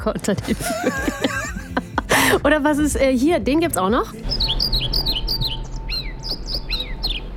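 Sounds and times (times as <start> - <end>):
speech: 0.0 - 1.5, 2.3 - 4.4
laughter: 0.0 - 2.4
European pied flycatcher singing: 4.2 - 7.3.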